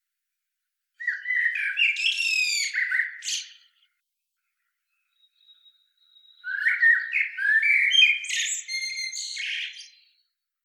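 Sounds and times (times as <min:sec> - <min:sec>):
common blackbird Turdus merula singing: 0:01.0 - 0:03.9, 0:04.9 - 0:10.2.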